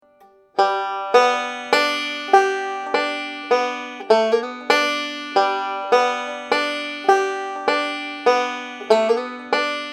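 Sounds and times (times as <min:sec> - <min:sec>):
banjo licks: 0:00.0 - 0:09.9.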